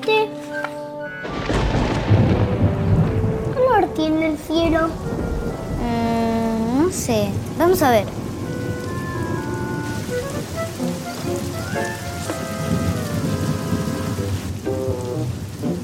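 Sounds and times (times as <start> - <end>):
rain falling: 1.1 - 15.8
low rumbling: 1.2 - 15.8
light melodic tones: 3.2 - 15.8
speech: 4.0 - 8.2.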